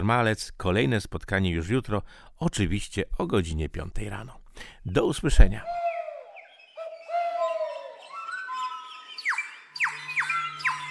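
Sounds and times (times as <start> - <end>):
speech: 0.0 - 5.8
mixed whistled bird notes: 5.6 - 10.8
grey partridge calling: 5.7 - 10.8.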